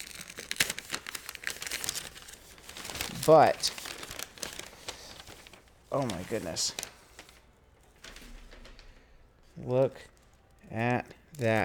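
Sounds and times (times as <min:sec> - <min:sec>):
wrapping paper around a box crinkling as it is unwrapped: 0:00.0 - 0:09.0, 0:09.9 - 0:11.6
speech: 0:03.2 - 0:03.8, 0:05.9 - 0:06.8, 0:09.7 - 0:10.1, 0:10.7 - 0:11.6.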